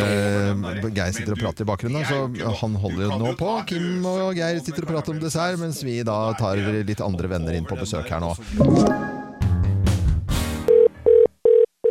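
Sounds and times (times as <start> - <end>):
speech: 0.8 - 9.2
busy mixed sound: 8.5 - 10.0
phone ringing with short electronic beeps: 10.7 - 11.8.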